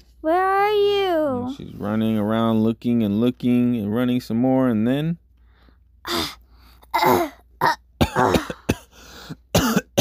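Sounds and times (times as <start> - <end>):
speech: 0.2 - 0.9, 1.5 - 5.2, 6.0 - 6.4, 7.0 - 8.4
person coughing: 6.1 - 10.0.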